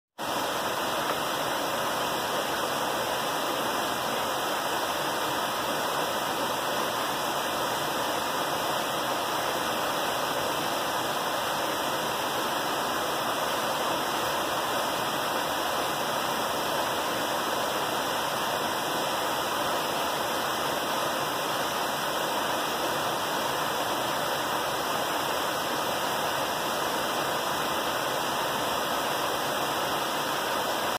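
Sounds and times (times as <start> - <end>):
waterfall roaring: 0.2 - 30.9.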